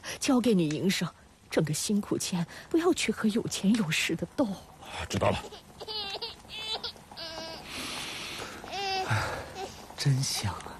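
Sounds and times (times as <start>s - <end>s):
speech: 0.2s - 6.1s, 10.0s - 10.7s
girl crying: 5.4s - 7.7s, 8.6s - 9.8s.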